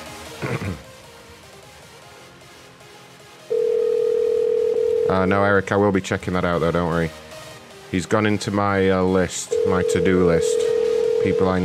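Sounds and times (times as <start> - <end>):
speech: 0.4 - 0.9, 5.1 - 7.2, 7.9 - 11.6
telephone ringing tone on an outgoing call: 3.5 - 5.6, 9.5 - 11.6.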